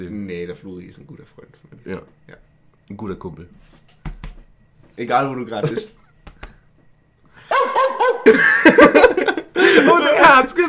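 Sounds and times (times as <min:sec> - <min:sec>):
speech: 0:00.0 - 0:04.0, 0:05.0 - 0:06.0, 0:08.3 - 0:08.5, 0:10.3 - 0:10.6
laughter: 0:05.6 - 0:06.0, 0:07.4 - 0:10.2
dog barking: 0:07.5 - 0:08.2.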